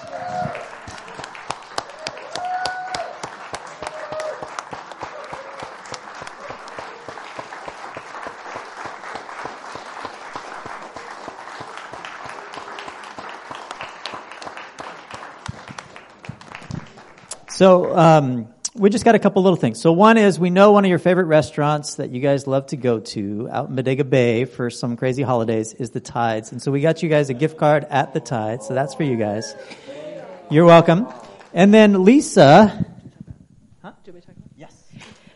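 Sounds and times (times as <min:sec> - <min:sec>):
sizable crowd applauding: 0:00.0 - 0:18.0
speech: 0:17.6 - 0:29.8, 0:30.5 - 0:32.8.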